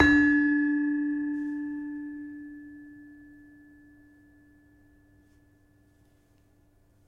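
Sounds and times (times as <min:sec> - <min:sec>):
gamelan demung: 0:00.0 - 0:04.6.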